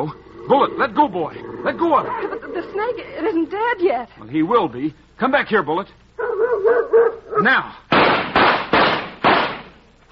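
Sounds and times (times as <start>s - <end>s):
speech: 0.0s - 6.0s, 6.6s - 8.1s
gunshots fired at a rattlesnake: 7.9s - 9.8s.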